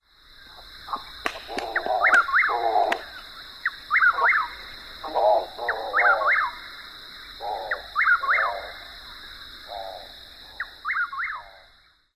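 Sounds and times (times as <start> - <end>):
bird croaking: 0.8 - 11.7
wings clapping: 1.2 - 3.2.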